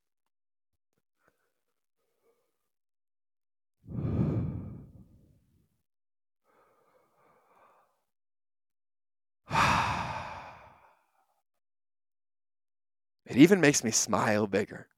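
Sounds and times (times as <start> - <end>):
deep breaths in a breathing exercise: 3.9 - 5.3, 6.5 - 8.1, 9.5 - 11.3
speech: 13.3 - 14.9.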